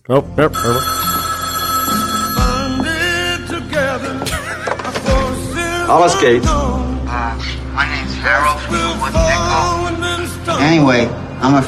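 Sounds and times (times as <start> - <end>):
speech: 0.0 - 1.0, 5.9 - 6.8, 7.8 - 11.6
steady musical background: 0.0 - 11.6
telephone bell ringing: 0.6 - 3.4.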